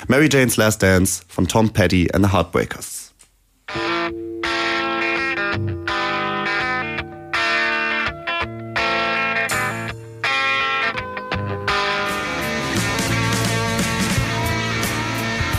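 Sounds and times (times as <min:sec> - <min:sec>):
speech: 0:00.1 - 0:03.0
rock song with distorted electric guitars and drums on the radio: 0:03.7 - 0:15.5.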